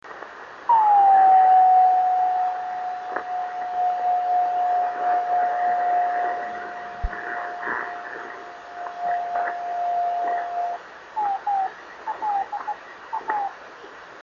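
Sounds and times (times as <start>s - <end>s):
drift net radio beacons on 26540 kHz: 0.7s - 11.6s.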